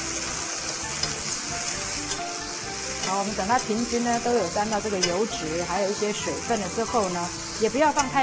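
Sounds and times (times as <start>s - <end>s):
water bamboo shoots and shiitake mushrooms sizzling in a hot wok: 0.0s - 8.2s
speech: 3.1s - 8.2s.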